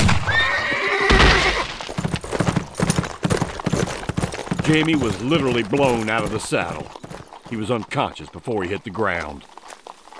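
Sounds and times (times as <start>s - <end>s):
horse hooves clip-clopping of an approaching patrol: 0.0s - 10.1s
horse whinny of an approaching patrol: 0.1s - 1.8s
speech: 4.7s - 9.5s.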